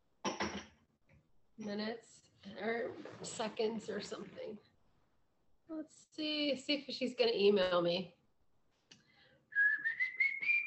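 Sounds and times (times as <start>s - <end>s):
speech: 1.6s - 4.7s, 5.7s - 8.2s
person whistling a tune: 9.5s - 10.6s.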